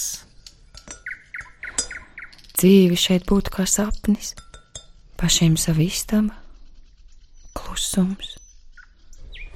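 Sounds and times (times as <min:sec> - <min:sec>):
bird chirping outside an open window: 0:00.0 - 0:09.5
speech: 0:02.6 - 0:04.4, 0:05.2 - 0:06.4, 0:07.8 - 0:08.4.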